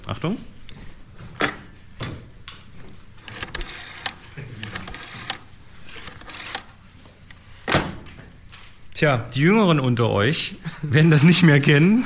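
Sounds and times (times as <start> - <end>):
speech: 0.1 - 0.6, 9.0 - 12.0
rotary telephone dial on a Siemens Fernmeldeapparat 611-2 telephone being turned: 2.9 - 6.8.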